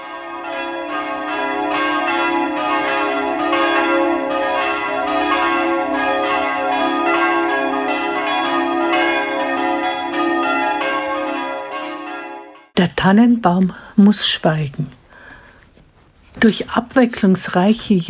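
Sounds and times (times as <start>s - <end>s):
church tower bells ringing on a freezing Christmas night: 0.0s - 12.8s
speech: 13.0s - 15.0s, 16.4s - 18.0s.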